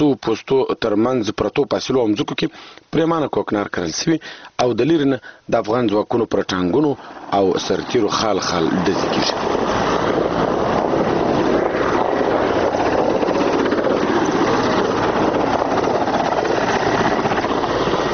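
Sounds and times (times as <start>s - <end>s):
speech: 0.0s - 9.9s
Mi-25 combat helicopter of the Afghan forces flying overhead: 6.4s - 18.1s.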